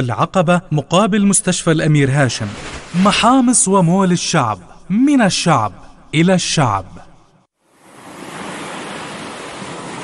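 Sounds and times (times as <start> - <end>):
speech: 0.0 - 7.1
steady wash of sea surf waves roaring: 7.7 - 10.0.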